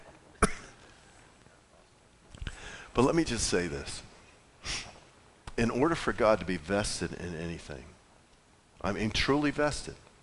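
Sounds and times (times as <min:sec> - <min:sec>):
faint noise: 0:00.0 - 0:10.2
single cough during a sermon: 0:00.4 - 0:00.8
speech: 0:02.9 - 0:04.8, 0:05.6 - 0:08.0, 0:08.8 - 0:10.0.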